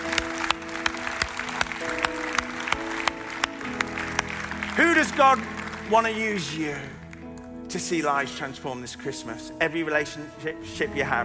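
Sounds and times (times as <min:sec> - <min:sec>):
audience applauding: 0:00.0 - 0:07.5
speech: 0:04.8 - 0:07.0, 0:07.7 - 0:11.2.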